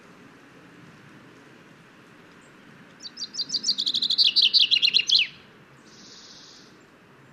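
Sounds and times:
common chaffinch Fringilla coelebs singing: 2.4 - 6.9.

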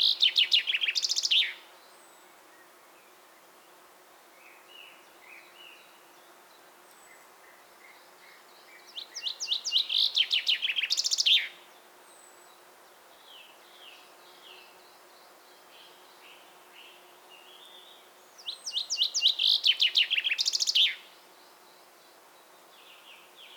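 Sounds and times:
common chaffinch Fringilla coelebs singing: 0.0 - 1.6, 8.3 - 11.6, 18.4 - 21.0.

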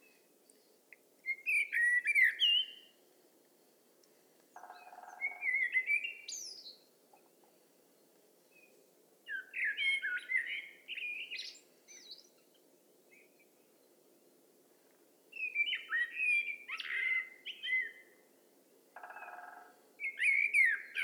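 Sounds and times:
common blackbird singing: 1.2 - 2.9, 4.6 - 6.9, 8.5 - 12.4, 15.4 - 18.0, 19.0 - 21.0.

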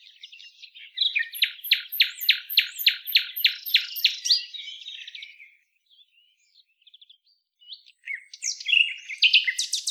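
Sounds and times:
Common nightingale Luscinia megarhynchos singing: 0.0 - 5.4, 7.7 - 9.8.

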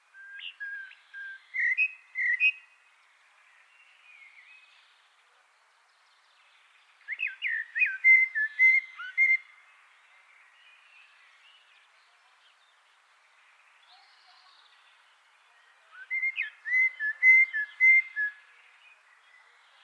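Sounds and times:
common blackbird Turdus merula singing: 0.2 - 2.6, 7.1 - 9.4, 15.9 - 18.4.

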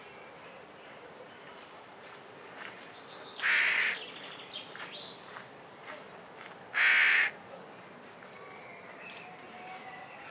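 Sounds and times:
carrion crow giving rough rasping caws: 3.4 - 4.0, 6.8 - 7.4.

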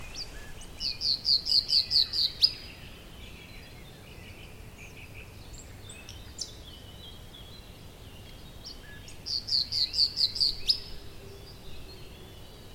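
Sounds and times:
common nightingale (Luscinia megarhynchos) song: 0.0 - 12.7.

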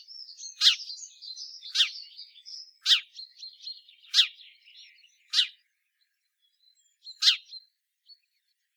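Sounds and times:
house sparrow chirps: 0.0 - 8.7.

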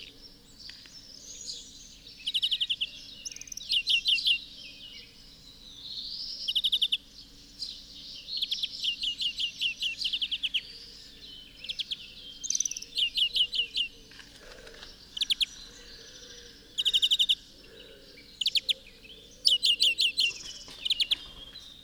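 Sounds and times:
Chloris chloris European greenfinch twittering: 0.7 - 21.8.

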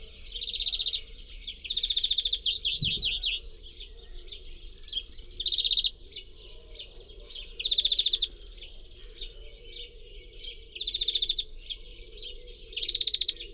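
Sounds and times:
European greenfinch (Chloris chloris) fast rolling trills and chattering twitters: 0.0 - 13.5
brief low thump: 2.8 - 3.3.

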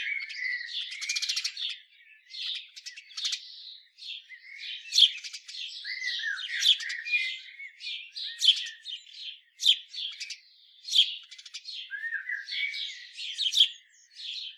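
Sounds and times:
house sparrow Passer domesticus chirping and chattering: 0.0 - 14.5.

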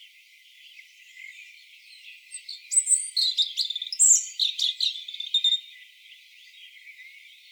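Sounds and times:
European robin Erithacus rubecula singing: 0.8 - 5.8.

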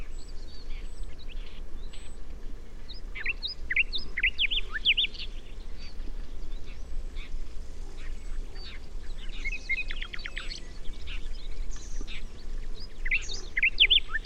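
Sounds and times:
common nightingale Luscinia megarhynchos singing: 0.0 - 14.2.

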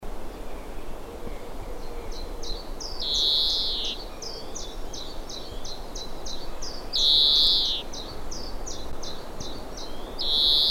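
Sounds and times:
Chloris chloris European greenfinch chirps and buzzy wheeze: 3.0 - 4.0, 6.9 - 7.9, 9.8 - 10.6.

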